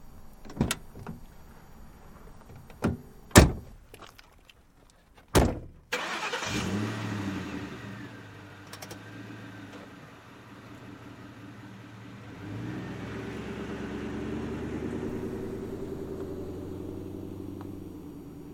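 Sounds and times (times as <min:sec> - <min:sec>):
car door thumps and clicks: 0:02.6 - 0:03.8, 0:05.3 - 0:05.8
car engine cranking, idling, revving and pulling away: 0:05.9 - 0:18.5.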